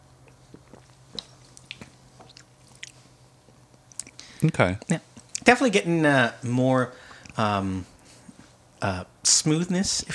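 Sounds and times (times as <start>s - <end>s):
low steady hum: 0.0s - 10.1s
sipping and swallowing barrel-aged beer: 0.1s - 5.5s, 7.0s - 7.4s
speech: 4.4s - 7.9s, 8.8s - 10.1s.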